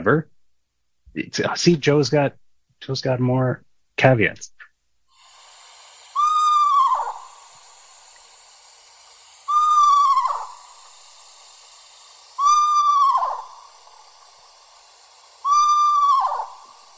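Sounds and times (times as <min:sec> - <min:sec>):
speech: 0:00.0 - 0:00.3, 0:01.2 - 0:04.6
Eastern screech owl whinny: 0:06.0 - 0:07.8, 0:09.5 - 0:10.9, 0:12.3 - 0:14.1, 0:15.4 - 0:16.9.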